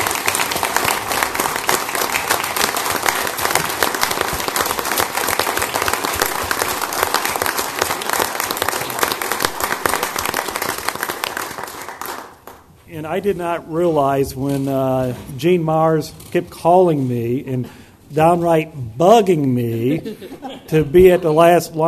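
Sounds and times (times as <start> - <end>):
audience applauding for an award: 0.0 - 12.7
speech: 13.1 - 21.8
laughter: 19.7 - 21.6.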